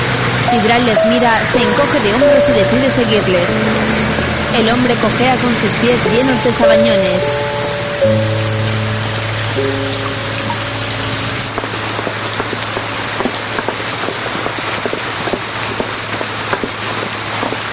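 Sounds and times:
sustained musical notes: 0:00.0 - 0:12.0
steady rain falling on city streets: 0:00.0 - 0:17.7
speech: 0:00.5 - 0:07.4, 0:08.0 - 0:08.4.

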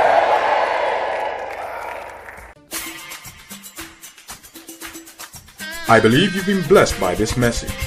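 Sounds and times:
large audience clapping and screaming in praise of God: 0:00.0 - 0:02.6
rhythmic music with a steady beat: 0:02.4 - 0:07.8
speech: 0:05.9 - 0:07.8.

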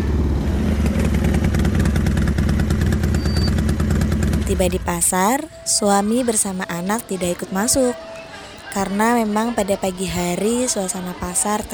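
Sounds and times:
motorcycle carrying three people engine rumbling: 0:00.0 - 0:06.2
speech: 0:04.5 - 0:11.7.

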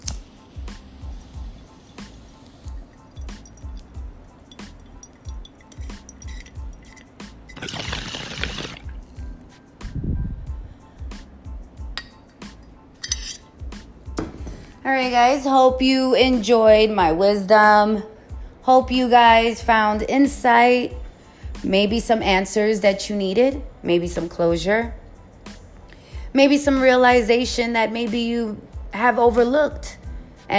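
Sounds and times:
faint clinks: 0:02.7 - 0:07.2
bong water bubbling as someone takes a hit of cannabis: 0:02.7 - 0:09.2
speech: 0:14.9 - 0:18.1, 0:18.7 - 0:21.0, 0:21.6 - 0:25.0, 0:26.3 - 0:30.5.

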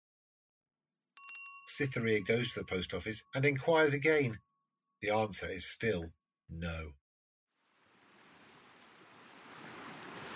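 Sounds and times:
speech: 0:01.7 - 0:07.0
waves breaking on the shore: 0:07.6 - 0:10.3.

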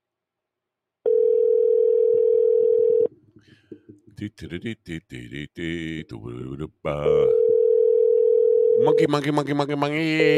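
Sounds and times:
telephone ringback tone while waiting for a call to be answered: 0:01.1 - 0:03.1, 0:07.4 - 0:09.1
speech: 0:04.2 - 0:07.4, 0:08.8 - 0:10.3.

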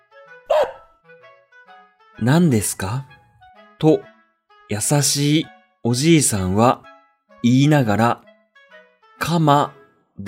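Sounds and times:
dog barking under a large tree at the corner of a field: 0:00.5 - 0:00.9
speech: 0:02.2 - 0:03.1, 0:03.8 - 0:04.1, 0:04.7 - 0:08.3, 0:09.2 - 0:10.2.

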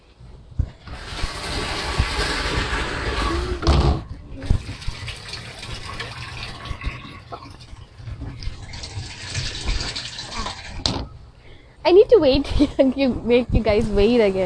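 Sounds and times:
water from a motor-driven pump pouring into a tank: 0:00.8 - 0:11.1
speech: 0:11.9 - 0:14.4.

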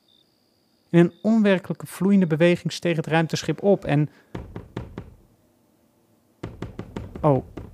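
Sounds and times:
speech: 0:00.9 - 0:04.7, 0:07.2 - 0:07.6
knocking on a front door: 0:04.3 - 0:05.3, 0:06.4 - 0:07.7.

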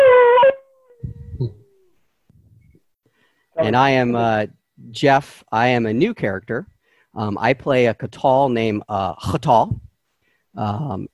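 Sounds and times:
person imitating an animal howl: 0:00.0 - 0:01.9
speech: 0:03.6 - 0:09.9, 0:10.6 - 0:11.1.

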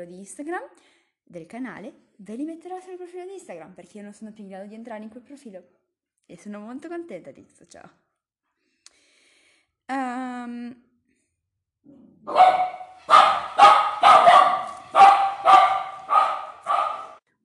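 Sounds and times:
speech: 0:00.0 - 0:08.0, 0:09.9 - 0:10.9, 0:11.8 - 0:13.8
dog barking: 0:12.3 - 0:17.2.

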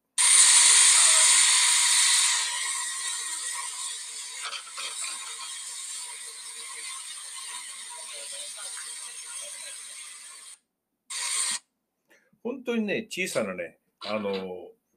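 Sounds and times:
small steam locomotive running: 0:00.2 - 0:11.6
speech: 0:12.6 - 0:14.7.

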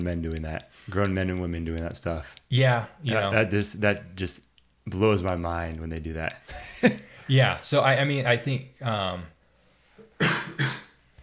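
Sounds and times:
speech: 0:00.0 - 0:09.3, 0:10.2 - 0:10.8
loud harsh coughs: 0:10.2 - 0:11.0.

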